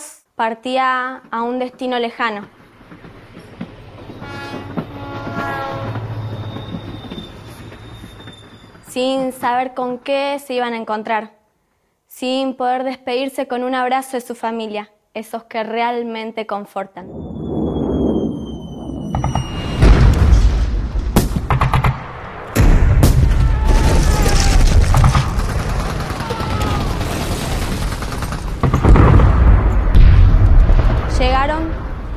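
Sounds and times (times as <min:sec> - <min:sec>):
speech: 0:00.4 - 0:02.6, 0:09.0 - 0:11.4, 0:12.2 - 0:17.2
heavy booming bomb explosions: 0:17.0 - 0:32.1
gunfire bursts: 0:24.9 - 0:31.0.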